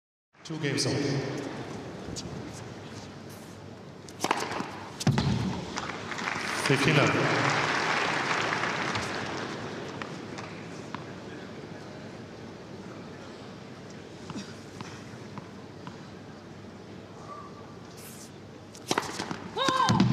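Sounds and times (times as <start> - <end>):
tennis match ambience: 0.4 - 20.1.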